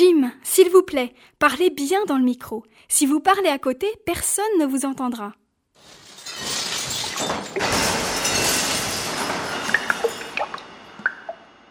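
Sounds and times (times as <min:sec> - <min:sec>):
speech: 0:00.0 - 0:06.0
small sharp tinkles of glass shards: 0:05.8 - 0:11.4
glass of water knocked over and breaking: 0:06.2 - 0:11.6.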